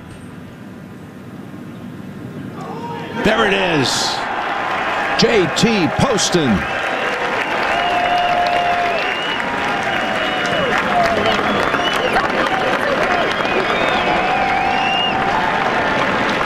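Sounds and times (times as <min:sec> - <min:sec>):
golf gallery applauding a winning putt: 0:03.1 - 0:16.4
speech: 0:03.2 - 0:04.2, 0:05.2 - 0:06.8
whistles from golf gallery: 0:07.4 - 0:12.4, 0:13.1 - 0:15.4.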